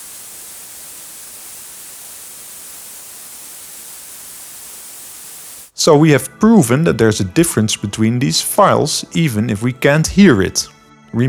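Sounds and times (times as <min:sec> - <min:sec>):
dither noise from difference between piano renditions with and without dithering: 0:00.0 - 0:06.1
speech: 0:05.8 - 0:11.2.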